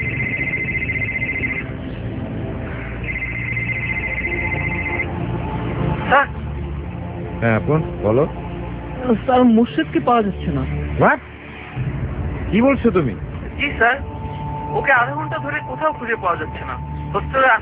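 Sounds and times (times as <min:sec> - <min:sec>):
mobile phone ringing: 0:00.0 - 0:01.7, 0:03.0 - 0:05.1
music: 0:00.0 - 0:17.6
speech: 0:07.4 - 0:08.4, 0:09.1 - 0:14.1, 0:14.7 - 0:17.6.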